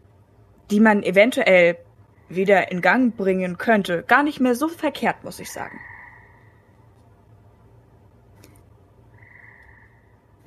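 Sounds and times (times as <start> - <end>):
low steady rumble: 0.0 - 10.4
speech: 0.7 - 5.9
frog croaking: 5.3 - 6.9, 9.1 - 10.4.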